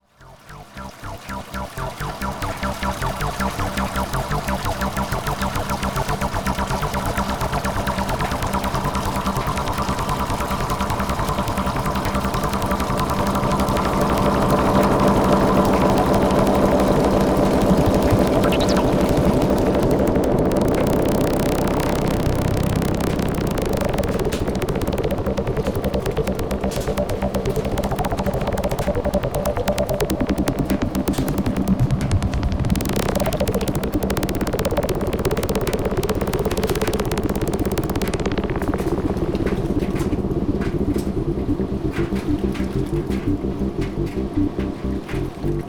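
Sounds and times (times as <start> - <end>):
synthesizer: 0.0 - 45.6.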